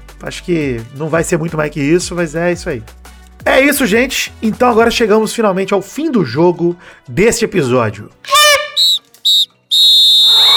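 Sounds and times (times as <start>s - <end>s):
speech: 0.2s - 9.0s
referee's whistle blasts: 8.3s - 10.5s.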